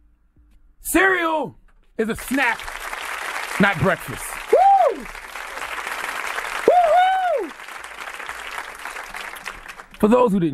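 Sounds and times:
speech: 0.8 - 2.8, 3.6 - 4.3, 10.0 - 10.5
applause from a small group: 2.1 - 10.3
long sliding whoops of cheering: 4.4 - 5.6, 6.5 - 7.6.

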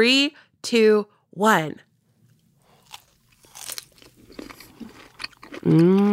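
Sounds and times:
speech: 0.0 - 1.9, 5.6 - 6.1
chewing pear slice: 2.3 - 6.1
crunching into a juicy pear slice: 2.7 - 6.1.

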